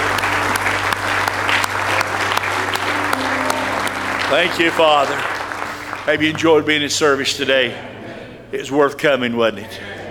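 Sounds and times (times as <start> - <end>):
crowd applauding with dense overlapping hand claps: 0.0 - 6.8
low hum: 2.1 - 6.3
speech: 4.3 - 5.3, 6.1 - 7.9, 8.5 - 9.9.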